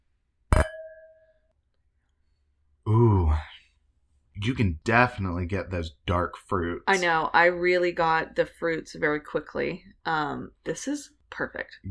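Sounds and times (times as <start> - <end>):
wine glasses clinking in a toast: 0.6 - 1.3
speech: 4.4 - 11.8.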